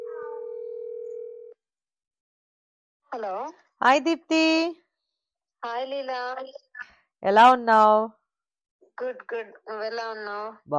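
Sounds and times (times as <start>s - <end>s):
telephone tone as a call is placed: 0.0s - 1.6s
speech: 3.1s - 4.8s, 5.6s - 8.2s, 9.0s - 10.7s.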